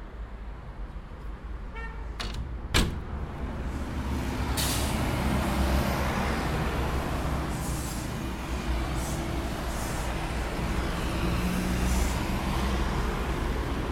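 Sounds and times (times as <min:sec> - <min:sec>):
loud city street traffic heard through an opened apartment window: 0:00.0 - 0:13.9
heavy engine rumble of street traffic: 0:02.2 - 0:13.9
truck air brakes releasing with sharp hissing bursts: 0:04.5 - 0:05.6, 0:07.2 - 0:10.6.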